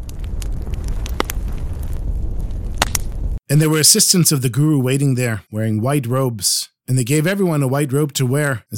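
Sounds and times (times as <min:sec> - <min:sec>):
bonfire popping and crackling: 0:00.0 - 0:03.4
large bonfire burning at the top of a mountain: 0:00.0 - 0:03.4
speech: 0:03.5 - 0:08.7.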